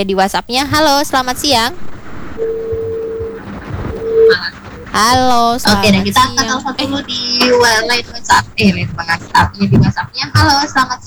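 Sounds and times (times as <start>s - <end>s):
speech: 0.0s - 2.5s, 4.3s - 11.0s
faint phone line noise: 0.0s - 11.0s
electronic beeping tone on an incoming phone line: 0.7s - 8.6s.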